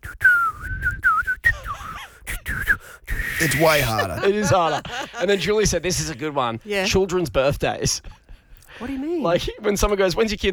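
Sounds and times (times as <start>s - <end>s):
person whistling a wavering high tune: 0.0s - 4.1s
laughter: 3.4s - 6.2s
speech: 3.4s - 8.2s, 8.8s - 10.5s.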